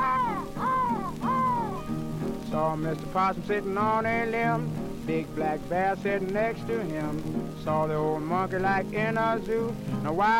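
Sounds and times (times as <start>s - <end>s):
crow cawing: 0.0s - 2.0s
speech: 2.6s - 10.3s.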